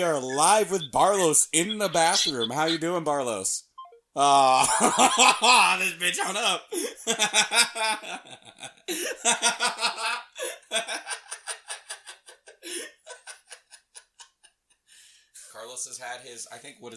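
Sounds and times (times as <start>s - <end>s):
speech: 0.0s - 11.4s, 15.6s - 16.9s
loud laughter: 4.4s - 5.8s, 7.1s - 13.8s.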